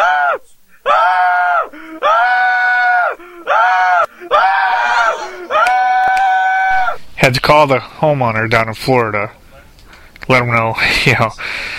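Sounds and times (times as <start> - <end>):
man imitating a panicked cartoonish scream: 0.0 - 7.0
speech: 7.3 - 9.4, 10.3 - 11.7.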